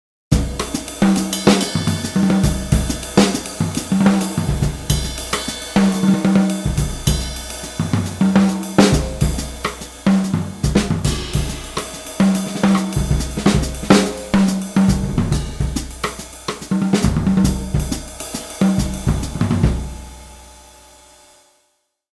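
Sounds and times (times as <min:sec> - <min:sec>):
modern jazz music: 0:00.3 - 0:20.2.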